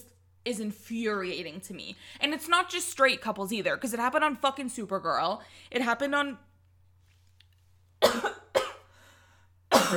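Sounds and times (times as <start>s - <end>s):
speech: 0.4s - 6.5s
person coughing: 8.0s - 8.9s, 9.7s - 9.9s.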